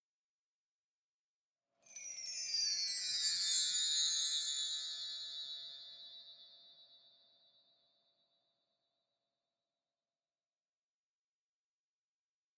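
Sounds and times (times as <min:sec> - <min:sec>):
wind chimes ringing: 0:01.8 - 0:06.9.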